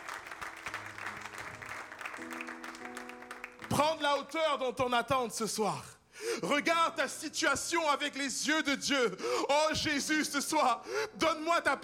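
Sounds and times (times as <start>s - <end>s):
audience applauding: 0.0s - 4.0s
speech: 3.8s - 11.8s.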